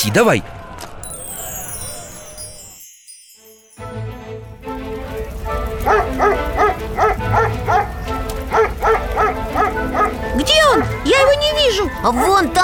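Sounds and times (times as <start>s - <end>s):
speech: 0.0s - 0.6s, 12.0s - 12.6s
dog barking: 5.8s - 7.9s, 8.5s - 11.0s.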